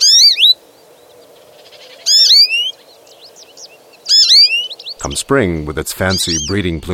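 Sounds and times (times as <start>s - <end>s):
songbird giving year-round call notes: 0.0s - 6.9s
speech: 5.0s - 6.9s.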